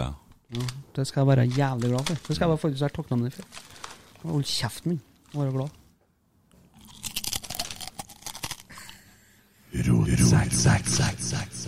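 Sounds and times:
speech: 0.1s - 5.8s, 9.7s - 11.5s
crisp crunching of food being chewed: 6.5s - 9.0s
person talking loudly: 9.7s - 11.6s.

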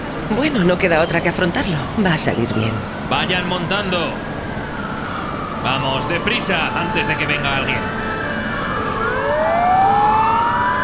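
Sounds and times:
speech: 0.3s - 4.3s, 5.6s - 8.1s
Turkish police car siren wailing: 1.8s - 10.8s
vehicle engine drone: 2.8s - 10.8s.

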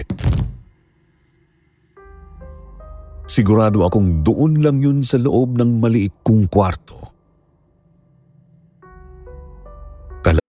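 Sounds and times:
heavy thud on the floor: 0.0s - 0.7s
speech: 3.4s - 7.1s.

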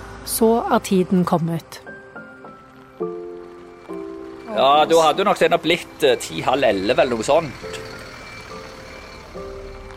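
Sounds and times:
large vehicle idling and rolling in: 0.0s - 9.9s
speech: 0.3s - 1.8s, 4.5s - 7.8s
high electronic reversing beeps: 4.5s - 9.9s.

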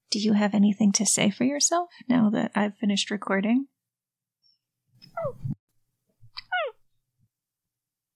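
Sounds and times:
speech: 0.1s - 3.7s
cat meowing: 6.4s - 6.8s.

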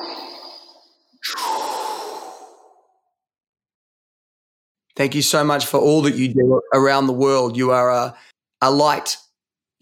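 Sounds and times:
deep breaths taken slowly: 1.3s - 3.0s
speech: 5.0s - 9.3s.

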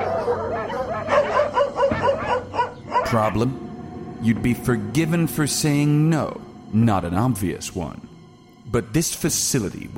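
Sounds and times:
dogs barking and yelping at a dog pound in Vermont: 0.0s - 3.5s
speech: 3.1s - 8.1s, 8.7s - 9.9s.

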